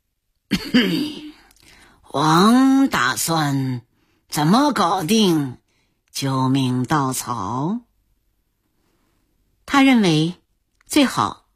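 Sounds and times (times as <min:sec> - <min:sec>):
person clearing throat in a drama scene: 0:00.5 - 0:01.5
person coughing in a drama scene: 0:00.5 - 0:01.5
speech: 0:00.6 - 0:01.2, 0:02.1 - 0:05.6, 0:06.2 - 0:07.9, 0:09.7 - 0:11.4.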